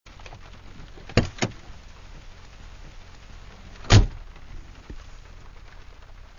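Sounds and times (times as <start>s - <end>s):
car door opening and closing: 1.0s - 1.7s, 3.8s - 4.3s.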